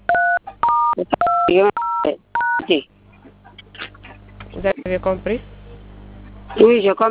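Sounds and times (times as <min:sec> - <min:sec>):
phone keypad DTMF tones dialing a star code: 0:00.1 - 0:02.7
speech: 0:01.0 - 0:02.9, 0:04.6 - 0:05.6, 0:06.6 - 0:07.1.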